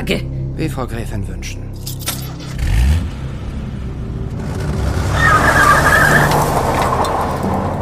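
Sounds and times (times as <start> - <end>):
speech: 0.1 - 1.6
Bentley car speeding away: 2.4 - 7.8
tyres squealing: 5.1 - 7.4.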